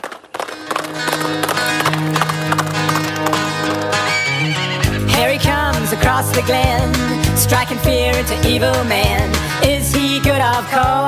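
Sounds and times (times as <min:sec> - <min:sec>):
horse hooves clip-clopping: 0:00.0 - 0:04.6
loud full music: 0:00.4 - 0:11.0
horse neighing: 0:01.7 - 0:05.1
speech: 0:06.4 - 0:11.0.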